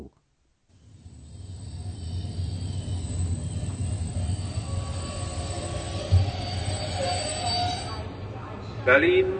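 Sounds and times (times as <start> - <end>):
train pulling into a station: 0.7 - 9.3
single train clunk: 0.8 - 8.2
thin metallic train wheel squeals: 0.8 - 8.3
speech: 8.9 - 9.3.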